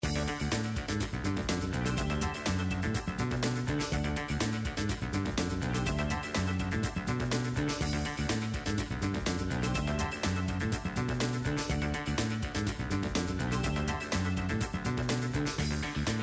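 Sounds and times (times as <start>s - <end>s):
slot machine free spin background music: 0.0s - 16.1s.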